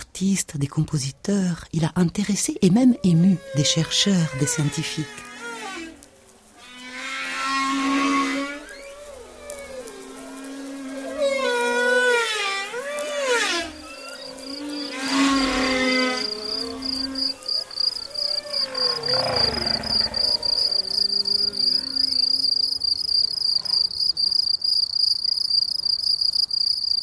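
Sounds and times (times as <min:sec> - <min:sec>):
speech: 0:00.2 - 0:05.3
long gliding moaning tonal calls: 0:02.9 - 0:23.5
chorus of crickets chirping: 0:03.4 - 0:27.0.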